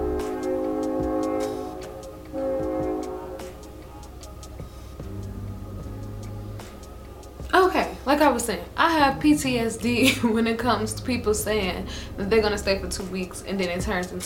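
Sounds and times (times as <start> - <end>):
passing train horn blaring: 0.0 - 4.1
speech: 8.1 - 14.2.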